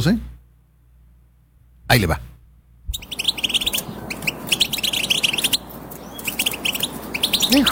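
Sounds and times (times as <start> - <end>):
speech: 0.0 - 0.3, 1.9 - 2.3, 7.5 - 7.7
soft noisy background: 0.0 - 7.7
European goldfinch singing: 2.9 - 7.7.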